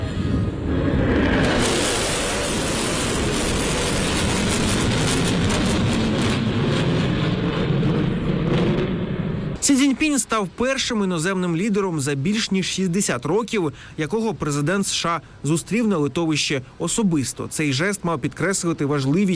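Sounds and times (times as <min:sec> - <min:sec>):
US B-1 Lancer strategic bombers flying overhead: 0:00.0 - 0:09.6
speech: 0:09.7 - 0:19.3.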